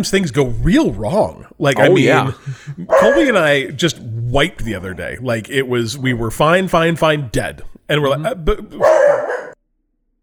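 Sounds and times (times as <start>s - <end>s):
speech: 0.0s - 9.5s
dog barking at a passing car: 2.9s - 3.4s, 8.8s - 9.6s.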